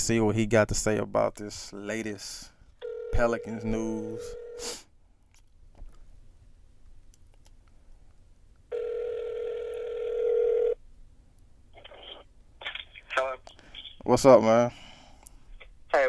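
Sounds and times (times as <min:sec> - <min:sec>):
speech: 0:00.0 - 0:02.5, 0:03.1 - 0:04.9, 0:14.0 - 0:14.8
phone ringback tone on a call connecting: 0:02.8 - 0:04.6, 0:08.7 - 0:10.8.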